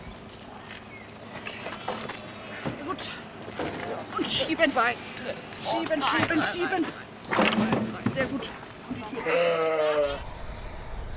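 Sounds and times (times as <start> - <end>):
low outdoor hiss: 0.0 - 11.1
speech: 4.3 - 8.6, 9.2 - 10.3
sheep in a herd bleating: 9.0 - 10.2.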